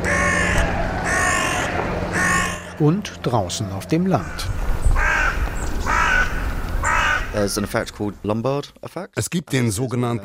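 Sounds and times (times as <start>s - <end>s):
carrion crows cawing in Stirling, Scotland: 0.0s - 7.7s
steady noise: 0.0s - 8.2s
speech: 2.8s - 4.7s, 7.4s - 10.2s.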